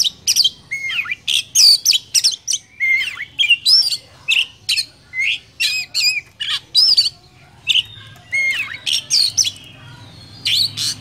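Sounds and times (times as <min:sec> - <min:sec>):
Oriental magpie-robin song used as lure sound for bird trapping: 0:00.0 - 0:10.9.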